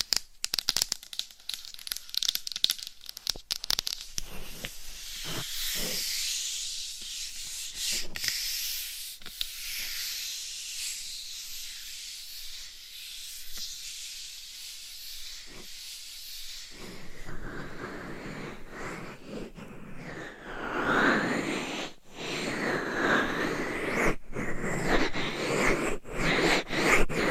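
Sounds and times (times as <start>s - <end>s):
scratching on a dummy head microphone: 4.1s - 27.2s.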